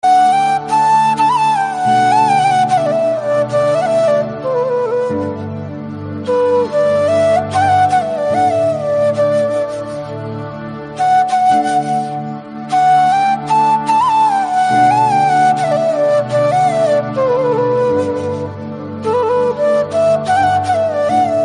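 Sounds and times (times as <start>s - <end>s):
instrumental background music: 0.0s - 21.4s.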